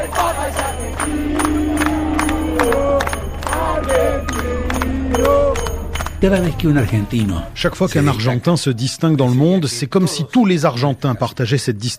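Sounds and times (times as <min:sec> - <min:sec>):
sharp rhythmic clapping or drumming: 0:00.0 - 0:06.6
large crowd singing and chanting outdoors outside cathedral: 0:00.0 - 0:10.4
speech: 0:06.2 - 0:11.9.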